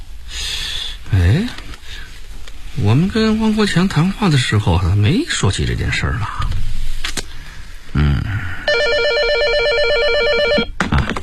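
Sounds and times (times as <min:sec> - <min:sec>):
constant noise: 0:00.0 - 0:11.2
speech: 0:02.8 - 0:06.5
electronic telephone ringtone warbling: 0:08.7 - 0:10.7.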